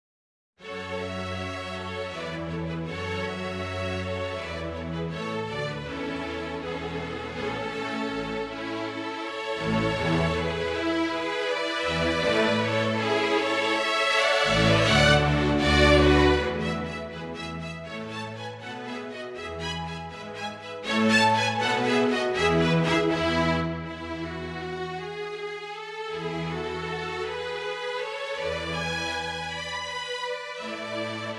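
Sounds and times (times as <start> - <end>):
MIDI version of ballet-pantomime music: 1.6 - 31.3.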